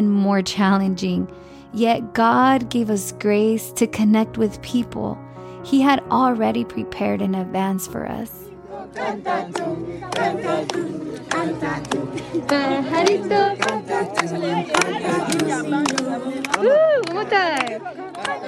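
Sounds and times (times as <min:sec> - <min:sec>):
speech: 0:00.0 - 0:18.4
busy background: 0:08.4 - 0:18.4
group of children singing in Spanish: 0:08.7 - 0:16.6.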